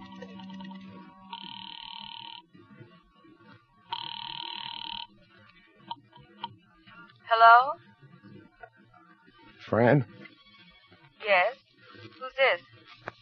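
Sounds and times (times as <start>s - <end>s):
telephone ringing through the receiver after dialing: 0.0s - 2.4s, 3.9s - 5.2s
speech: 7.3s - 7.8s, 9.7s - 10.2s.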